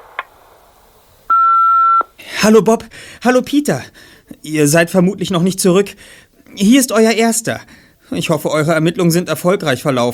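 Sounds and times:
faint click: 0.0s - 0.3s
quiet telephone line hiss: 0.0s - 10.1s
answering machine electronic beep tone: 1.3s - 2.1s
speech: 2.4s - 10.1s.

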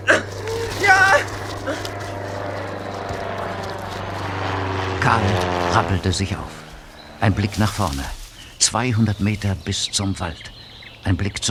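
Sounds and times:
Cessna 172 propeller plane droning low overhead: 0.0s - 11.4s
speech: 5.8s - 6.6s, 7.2s - 11.4s.

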